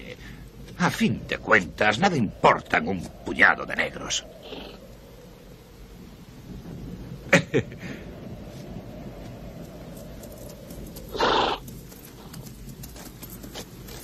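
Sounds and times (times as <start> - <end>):
steady low rumble: 0.0 - 14.0
speech: 0.1 - 4.7, 7.5 - 8.0
horse hoof clops: 10.2 - 14.0
horse giving a short breathy whinny: 11.1 - 11.6.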